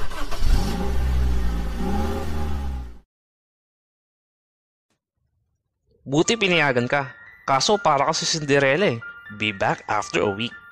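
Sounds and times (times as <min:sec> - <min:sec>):
rented car engine revving as the car pulls away: 0:00.0 - 0:03.0
speech: 0:06.1 - 0:10.6.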